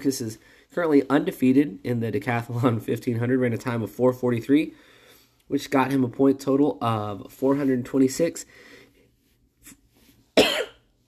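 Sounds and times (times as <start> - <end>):
speech: 0.0 - 4.9, 5.5 - 8.7
person coughing after drinking coffee: 10.4 - 10.9.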